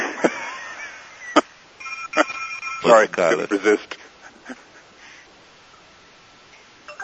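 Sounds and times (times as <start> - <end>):
faint hum: 0.0 - 7.0
phone ringing with short electronic tones: 1.8 - 3.4
speech: 2.8 - 4.6.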